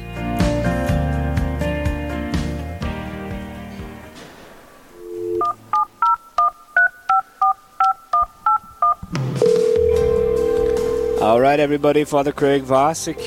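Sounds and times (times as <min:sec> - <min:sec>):
music: 0:00.0 - 0:04.5, 0:09.0 - 0:13.2
quick keypad beeps: 0:05.0 - 0:09.9
telephone dial tone: 0:05.0 - 0:11.4
speech: 0:11.3 - 0:13.2.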